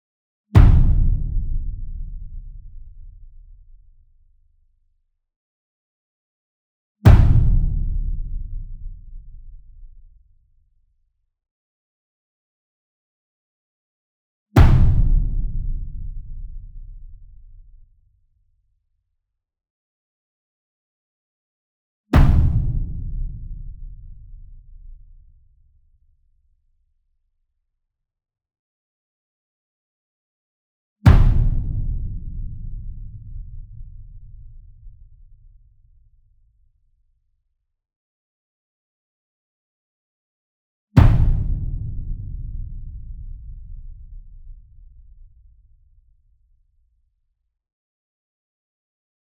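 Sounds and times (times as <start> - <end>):
single 66 inch drum hit with soft beater: 0.6 - 2.6, 7.1 - 9.3, 14.6 - 17.0, 22.2 - 24.2, 31.1 - 34.5, 41.0 - 44.8.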